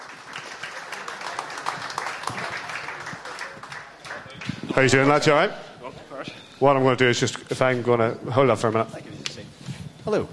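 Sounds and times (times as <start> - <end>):
crowd applauding for volunteers: 0.0 - 5.2
speech: 4.8 - 5.7, 6.6 - 9.0, 10.0 - 10.3.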